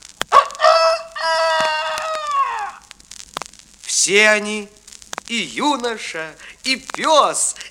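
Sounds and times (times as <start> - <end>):
rooster crowing: 0.3 - 2.8
faint clicks: 1.0 - 3.7, 4.8 - 7.6
speech: 4.0 - 7.6.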